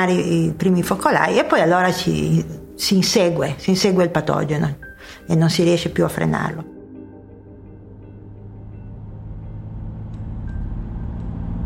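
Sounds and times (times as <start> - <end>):
speech: 0.0 - 6.7
car engine and road noise on a highway: 8.0 - 11.6.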